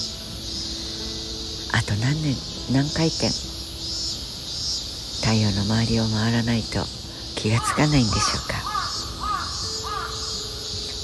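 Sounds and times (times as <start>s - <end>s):
steady hiss of outdoor ambience: 0.0s - 11.0s
speech: 1.8s - 3.5s, 5.3s - 8.8s
crow cawing: 7.5s - 10.7s.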